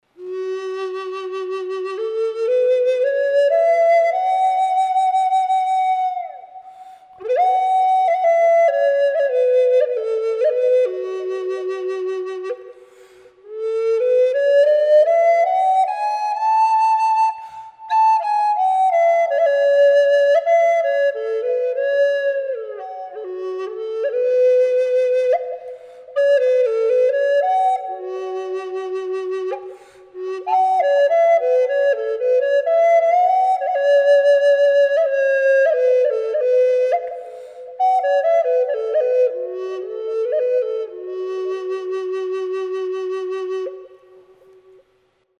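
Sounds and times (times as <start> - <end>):
flutes playing F sharp: 0.0 - 44.9.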